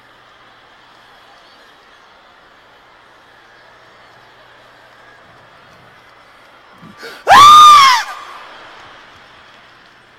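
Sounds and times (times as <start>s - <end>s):
person imitating the pained scream of a child being hit: 7.0s - 8.2s.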